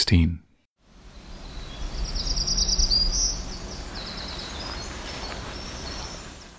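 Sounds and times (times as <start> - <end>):
speech: 0.1 - 0.4
low outdoor rumble: 0.9 - 6.5
Black-throated Green Warbler singing high buzzy phrases: 1.0 - 6.5
Winter Wren singing a long rapid twittering trill: 1.0 - 6.5.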